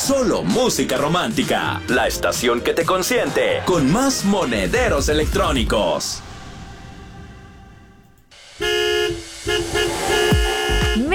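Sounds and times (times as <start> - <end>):
speech: 0.1 - 6.3
low hum: 4.8 - 11.1
promotional vehicle horn honking: 8.6 - 11.1.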